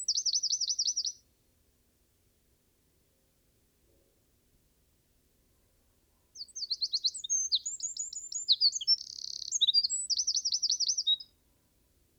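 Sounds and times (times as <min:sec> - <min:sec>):
Eurasian wren Troglodytes troglodytes singing: 0:00.0 - 0:01.1, 0:06.4 - 0:11.2.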